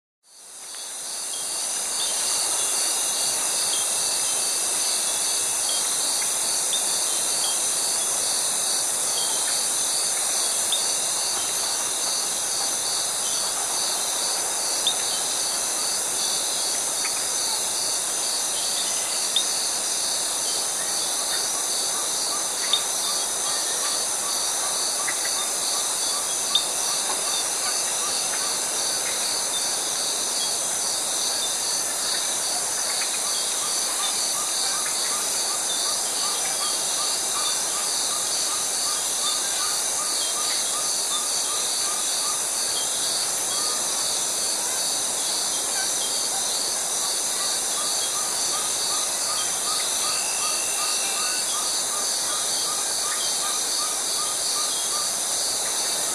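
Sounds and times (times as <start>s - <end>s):
cicada in a tropical forest: 0.3s - 56.1s.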